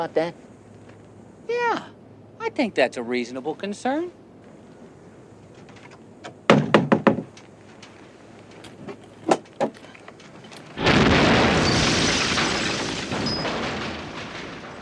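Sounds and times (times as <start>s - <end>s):
speech: 0.0s - 0.5s, 1.5s - 4.2s
sharp bangs: 5.5s - 7.9s, 8.7s - 14.8s
big explosion roar: 10.8s - 14.8s.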